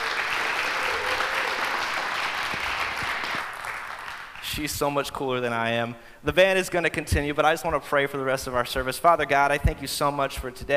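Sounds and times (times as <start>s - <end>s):
audience clapping: 0.0s - 5.0s
speech: 4.5s - 10.7s.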